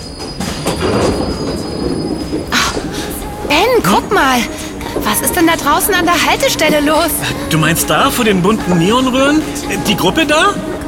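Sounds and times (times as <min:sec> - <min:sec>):
subway train wheels squealing: 0:00.0 - 0:03.1
subway train rumbling: 0:00.0 - 0:10.8
speech: 0:03.5 - 0:10.7.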